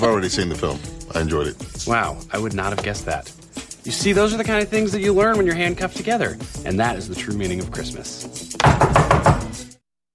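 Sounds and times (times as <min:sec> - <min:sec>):
speech: 0:00.0 - 0:08.9
knocking on a door: 0:08.6 - 0:09.6.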